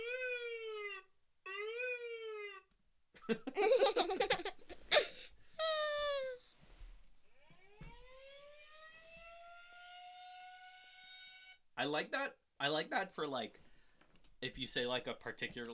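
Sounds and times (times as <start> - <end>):
ambulance siren wailing: 0.0 - 2.5, 7.3 - 11.6
laughter: 3.2 - 6.1
speech: 3.3 - 4.0, 11.9 - 13.6, 14.4 - 15.7.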